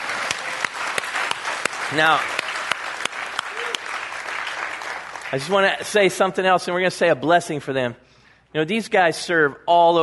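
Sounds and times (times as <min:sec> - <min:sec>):
crowd applauding: 0:00.0 - 0:05.9
speech: 0:01.9 - 0:02.4, 0:05.3 - 0:10.0.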